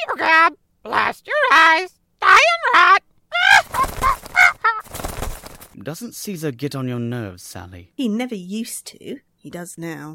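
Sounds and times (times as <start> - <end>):
speech: 0.1 - 3.0, 5.8 - 10.1
parrot squawking: 0.9 - 5.6.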